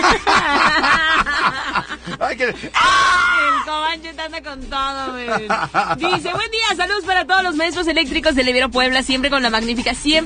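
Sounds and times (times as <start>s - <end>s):
laughter: 0.0s - 2.8s, 5.0s - 6.7s
speech: 2.2s - 10.2s
two people shouting together: 2.7s - 3.8s.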